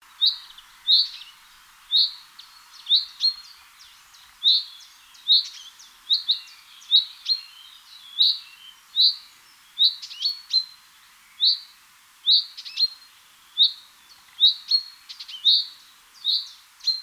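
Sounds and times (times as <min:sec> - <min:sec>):
faint background hiss: 0:00.0 - 0:17.0
Common chaffinch Fringilla coelebs giving bright chirping calls: 0:00.2 - 0:11.7, 0:12.3 - 0:17.0.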